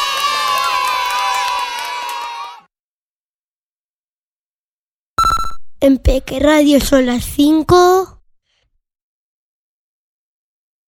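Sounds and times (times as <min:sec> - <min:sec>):
children cheering, shouting and clapping: 0:00.0 - 0:02.7
speech: 0:05.8 - 0:08.2.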